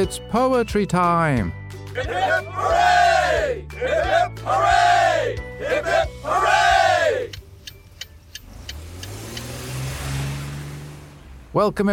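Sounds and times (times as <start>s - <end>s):
speech: 0.0s - 7.4s, 11.6s - 11.9s
road noise: 2.0s - 11.9s
car engine accelerating: 5.6s - 11.9s
sharp ticking clicks: 7.3s - 9.6s.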